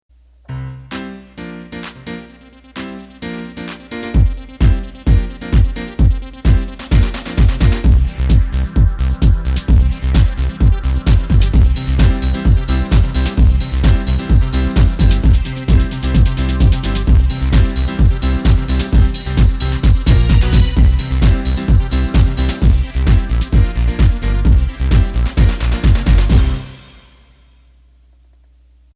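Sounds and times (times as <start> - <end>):
house music: 0.2 - 27.5.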